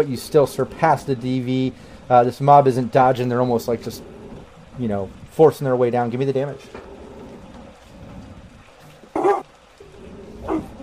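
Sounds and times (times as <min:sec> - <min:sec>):
speech: 0:00.0 - 0:04.1, 0:04.8 - 0:06.9
low steady hum: 0:00.0 - 0:10.8
dog barking: 0:09.1 - 0:09.5, 0:10.4 - 0:10.8.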